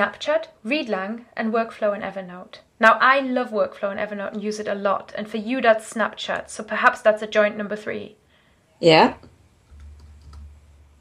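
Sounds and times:
speech: 0:00.0 - 0:08.2, 0:08.8 - 0:09.3
low hum: 0:00.0 - 0:10.9
typing on a computer keyboard: 0:09.7 - 0:10.5.

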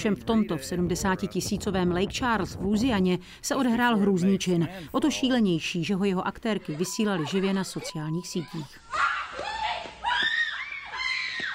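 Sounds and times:
speech: 0:00.0 - 0:09.5
people screaming in a supermarket: 0:08.8 - 0:11.5.

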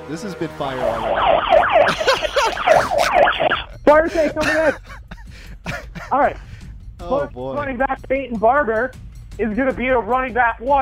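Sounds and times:
speech: 0:00.1 - 0:04.9, 0:06.1 - 0:10.7
siren wailing: 0:00.7 - 0:03.8
laughter: 0:01.7 - 0:06.2.

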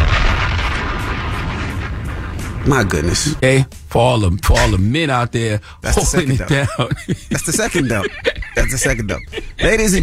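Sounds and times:
bomb explosion sound effect: 0:00.0 - 0:03.4
speech: 0:02.6 - 0:10.0
laughter: 0:05.9 - 0:10.0.

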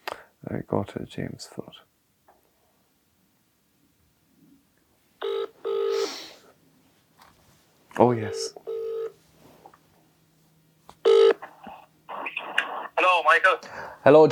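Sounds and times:
speech: 0:00.4 - 0:01.9, 0:08.0 - 0:08.6, 0:13.4 - 0:14.3
electronic telephone keypad dialing tones: 0:05.2 - 0:05.9, 0:08.3 - 0:09.2, 0:11.0 - 0:11.4.

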